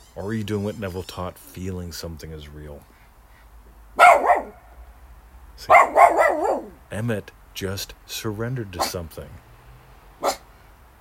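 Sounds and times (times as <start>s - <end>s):
speech: 0.2s - 2.9s, 5.6s - 6.0s, 6.9s - 9.5s
dog barking at a baby magpie: 4.0s - 4.6s, 5.7s - 6.8s, 10.2s - 10.5s.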